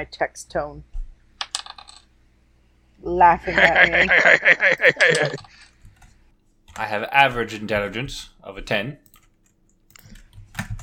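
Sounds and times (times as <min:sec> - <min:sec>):
speech: 0:00.0 - 0:00.9, 0:03.0 - 0:05.5, 0:06.8 - 0:09.0
dice clattering across a hard tabletop: 0:01.4 - 0:02.1, 0:04.9 - 0:05.6
laughter: 0:03.4 - 0:05.5.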